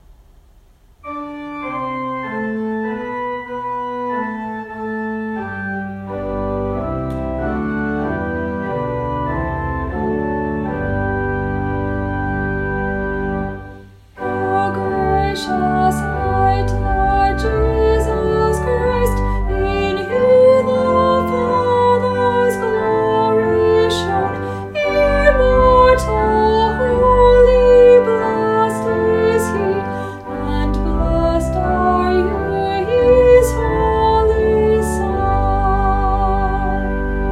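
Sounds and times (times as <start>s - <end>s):
organ playing: 1.0s - 37.3s
voices singing the last verse of a canon: 14.2s - 36.6s.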